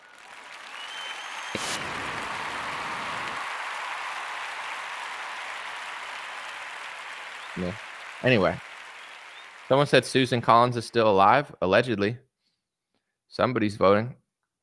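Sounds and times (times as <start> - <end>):
crowd applauding: 0.0 - 11.2
speech: 7.6 - 8.6, 9.7 - 12.2, 13.3 - 14.2.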